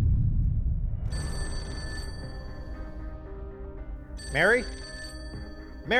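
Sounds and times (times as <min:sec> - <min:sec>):
telephone bell ringing: 0:01.1 - 0:03.2, 0:04.2 - 0:05.9
speech: 0:04.3 - 0:04.8.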